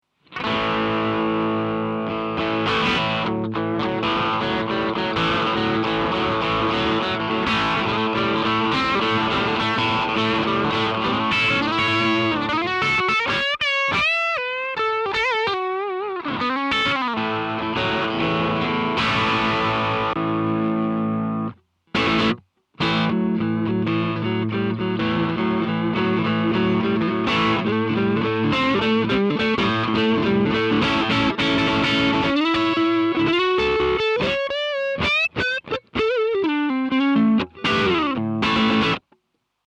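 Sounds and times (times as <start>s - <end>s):
guitar through a Duckbucker drive pedal: 0.0s - 39.6s.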